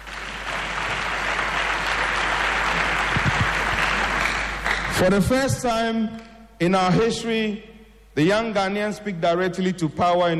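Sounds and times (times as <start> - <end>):
large audience clapping: 0.0 - 5.2
speech: 5.0 - 10.3.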